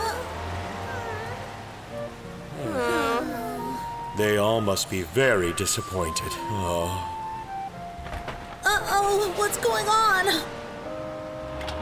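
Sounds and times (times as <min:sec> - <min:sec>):
rain falling: 0:00.0 - 0:11.7
brief tonal voice-like sound: 0:02.5 - 0:04.0
speech: 0:04.2 - 0:07.2, 0:09.1 - 0:10.6.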